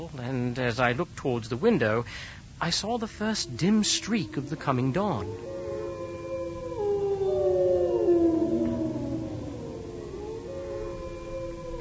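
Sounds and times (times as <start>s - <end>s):
speech: 0.0s - 5.6s
several wolves howling together: 3.2s - 11.7s.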